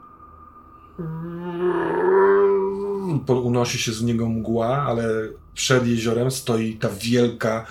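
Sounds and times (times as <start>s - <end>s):
speech: 1.0s - 1.7s, 3.1s - 7.6s
eerie howling roar from a lake in an empty place without buildings: 1.0s - 3.3s.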